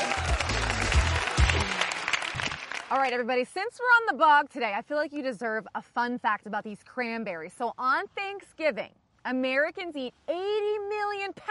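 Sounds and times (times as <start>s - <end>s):
outdoor applause on a cranberry bog: 0.0s - 3.3s
speech: 2.9s - 11.4s.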